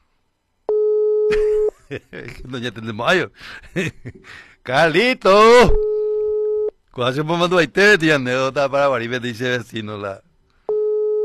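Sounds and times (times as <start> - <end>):
phone line ringing tone: 0.7 - 1.3, 5.9 - 6.7, 10.7 - 11.2
speech: 1.9 - 5.9, 7.0 - 10.2.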